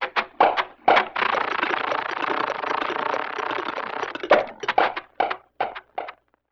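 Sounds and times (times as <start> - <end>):
vintage cartoon comedy motor foley: 1.0 - 6.0.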